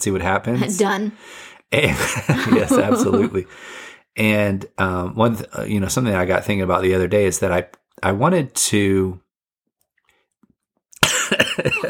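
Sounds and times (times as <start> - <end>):
speech: 0.0 - 9.2, 11.3 - 11.8
laughter: 1.8 - 3.5
person choking and coughing on own spit: 2.4 - 3.4, 11.0 - 11.8.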